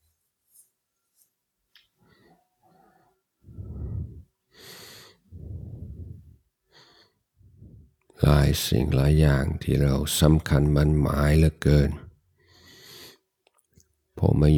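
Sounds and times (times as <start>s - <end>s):
slow deep breathing in and out: 2.8s - 8.7s, 12.4s - 13.2s
speech: 8.4s - 12.0s, 14.2s - 14.5s.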